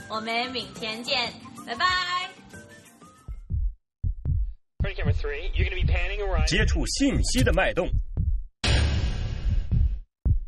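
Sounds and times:
speech: 0.1s - 2.2s, 4.9s - 8.0s
booming heartbeat sound effect: 3.3s - 10.4s.

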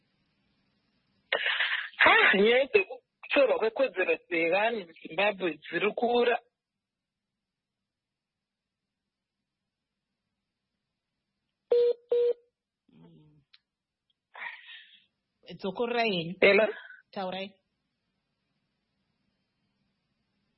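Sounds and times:
speech: 2.0s - 6.5s, 15.5s - 17.6s
phone beeps: 11.7s - 12.4s.

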